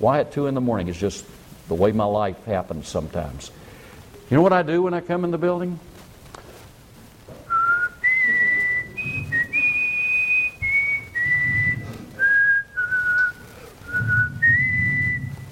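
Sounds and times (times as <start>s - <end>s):
speech: 0.0s - 3.6s, 4.3s - 5.9s
person whistling a slow wandering melody: 7.5s - 15.5s.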